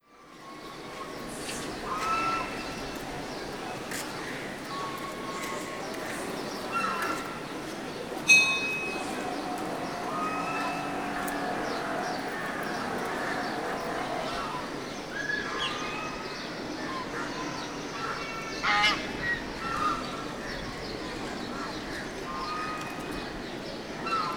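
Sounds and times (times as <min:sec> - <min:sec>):
birds in a city place in South India: 0:00.4 - 0:24.3
animals in a city place in South India: 0:01.0 - 0:15.1
bell in a city place in South India: 0:08.3 - 0:09.4.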